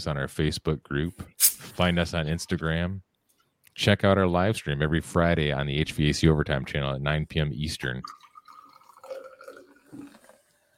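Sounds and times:
speech: 0:00.0 - 0:03.1, 0:03.8 - 0:08.2
beer being poured into a glass: 0:08.0 - 0:10.7.

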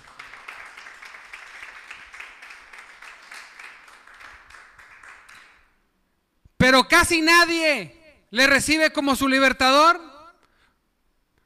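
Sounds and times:
audience applause: 0:00.0 - 0:05.6
speech: 0:06.7 - 0:10.0.

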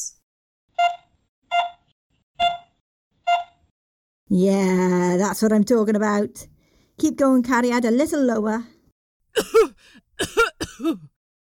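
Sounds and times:
speech: 0:04.3 - 0:11.1
throaty coughs: 0:09.4 - 0:11.2.

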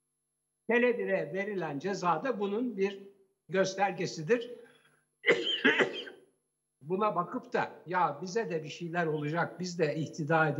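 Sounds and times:
speech: 0:00.7 - 0:04.6, 0:06.9 - 0:10.5
person coughing: 0:05.2 - 0:06.2.

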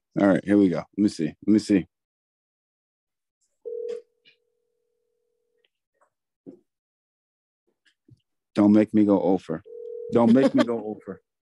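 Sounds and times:
speech: 0:00.2 - 0:01.9, 0:08.6 - 0:11.2
phone call electronic ringback tone: 0:03.7 - 0:04.2.

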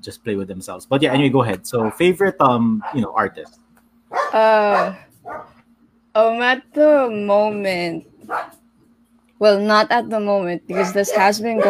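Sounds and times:
speech: 0:00.0 - 0:03.6, 0:04.3 - 0:05.5, 0:06.2 - 0:08.6, 0:09.4 - 0:11.6
faint steady hum: 0:00.0 - 0:11.6
dog barking at home: 0:01.7 - 0:02.2, 0:02.8 - 0:03.4, 0:04.1 - 0:05.6, 0:08.2 - 0:08.6, 0:10.7 - 0:11.6.

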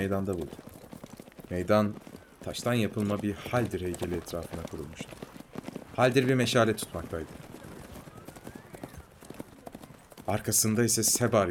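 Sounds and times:
speech: 0:00.0 - 0:00.8, 0:01.5 - 0:05.3, 0:06.0 - 0:07.4, 0:10.3 - 0:11.4
horse hooves clip-clopping on a hard surface in a town: 0:00.0 - 0:11.4
low murmur: 0:01.4 - 0:10.2
faint rising whistle-like tone: 0:07.8 - 0:09.2.

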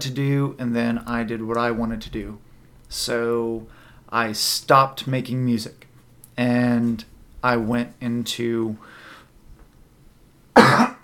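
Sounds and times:
speech: 0:00.0 - 0:09.0
person coughing: 0:10.6 - 0:11.0.

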